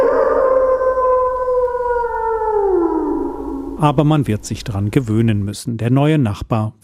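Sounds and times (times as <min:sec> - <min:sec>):
wolf howling: 0:00.0 - 0:04.2
speech: 0:03.8 - 0:06.8.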